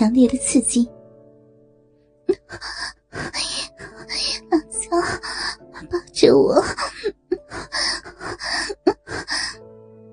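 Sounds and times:
speech: 0:00.0 - 0:01.0, 0:02.3 - 0:03.6, 0:04.2 - 0:08.7
woman moaning softly: 0:02.3 - 0:09.6
woman panting heavily: 0:02.3 - 0:09.6.

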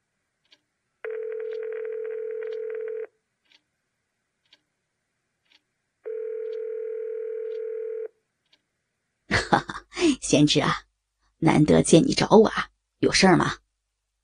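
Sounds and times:
phone ringback tone: 0:01.0 - 0:03.1, 0:06.1 - 0:08.1
speech: 0:10.3 - 0:10.8, 0:11.4 - 0:13.6.

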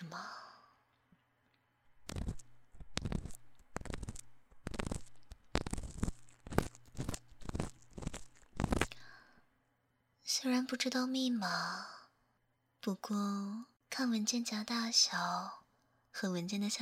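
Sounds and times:
cotton swab moving inside an ear: 0:02.0 - 0:09.1
speech: 0:10.4 - 0:11.9, 0:12.8 - 0:15.6, 0:16.2 - 0:16.8.

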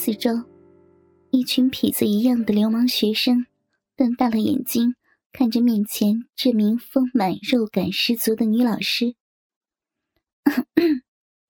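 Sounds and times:
speech: 0:00.0 - 0:00.5, 0:01.3 - 0:09.2, 0:10.4 - 0:11.1
woman coughing lightly: 0:10.5 - 0:11.0.

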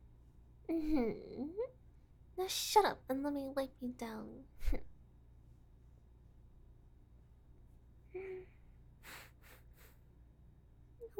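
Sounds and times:
low steady hum: 0:00.0 - 0:11.1
speech: 0:00.7 - 0:01.8, 0:02.4 - 0:04.9
person sniffing: 0:09.0 - 0:10.1.

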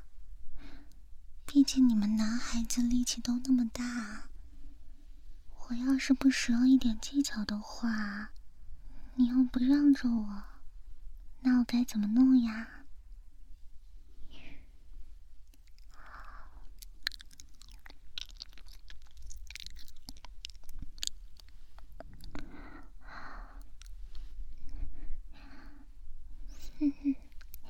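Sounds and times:
speech: 0:01.5 - 0:04.3, 0:05.7 - 0:08.4, 0:09.2 - 0:10.5, 0:11.4 - 0:12.8
soft moist chewing of cake: 0:15.5 - 0:22.6, 0:27.3 - 0:27.6
mouth clicks: 0:15.5 - 0:22.7.

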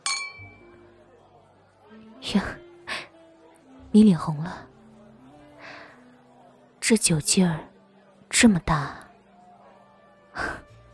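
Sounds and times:
glasses clinking in a toast: 0:00.0 - 0:00.7
speech: 0:02.2 - 0:02.6, 0:03.9 - 0:04.7, 0:06.9 - 0:07.7, 0:08.3 - 0:09.0.

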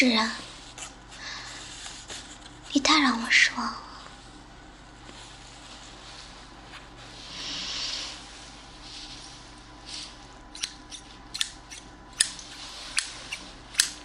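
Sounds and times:
speech: 0:00.0 - 0:00.5, 0:02.8 - 0:03.9
soft hiss: 0:00.0 - 0:10.5
scissors snipping: 0:10.6 - 0:14.0.

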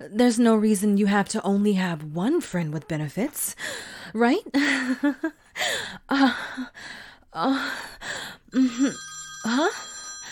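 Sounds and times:
speech: 0:00.1 - 0:09.9
phone ringing with a high electronic ringtone: 0:08.6 - 0:10.3.

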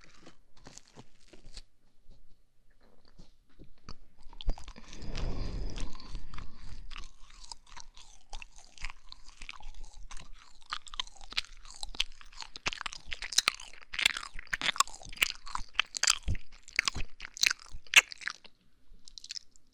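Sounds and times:
crunchy chewing of someone being fed food: 0:00.0 - 0:19.7.

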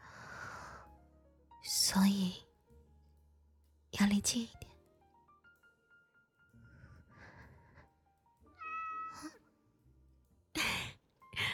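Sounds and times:
speech: 0:01.6 - 0:02.4, 0:04.1 - 0:04.7
cat meowing: 0:08.5 - 0:09.4.

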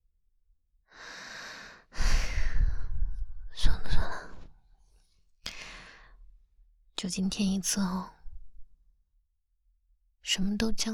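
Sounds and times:
person breathing: 0:00.9 - 0:03.1, 0:05.5 - 0:06.2
speech: 0:07.0 - 0:08.2, 0:10.3 - 0:10.9.

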